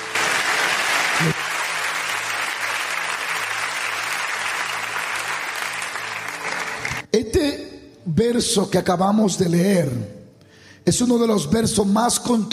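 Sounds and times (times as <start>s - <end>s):
audience applauding: 0.0s - 7.1s
speech: 1.2s - 1.4s, 7.1s - 10.2s, 10.9s - 12.5s.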